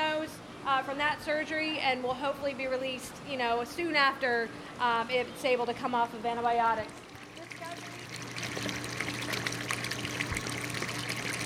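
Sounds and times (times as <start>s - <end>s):
speech: 0.8s - 7.0s
low mechanical hum of a pump running: 6.6s - 11.4s
clean salt water pouring and splashing into an aquarium tank: 6.9s - 11.4s.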